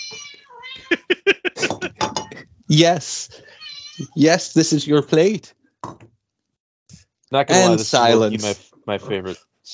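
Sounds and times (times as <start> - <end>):
cats meowing loudly while being fed: 0.0 - 1.1, 3.5 - 4.2
laughter: 0.8 - 4.3, 7.5 - 8.6
speech: 2.7 - 3.4, 4.1 - 5.6, 7.3 - 9.7.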